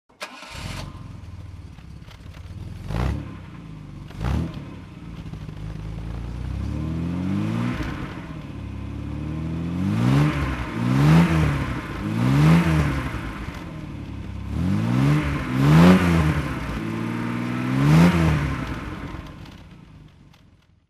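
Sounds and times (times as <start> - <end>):
MGC GT automatic car engine under throttle: 0.2 - 19.7.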